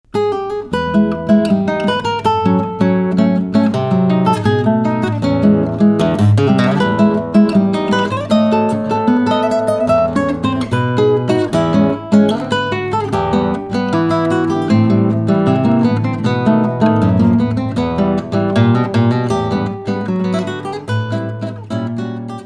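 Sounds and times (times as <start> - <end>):
guitar piece: 0.1 - 22.4.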